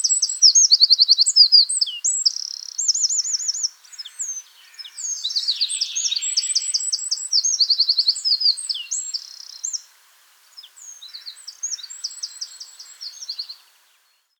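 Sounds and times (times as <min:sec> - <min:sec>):
Eurasian wren song, Troglodytes troglodytes: 0:00.0 - 0:14.3.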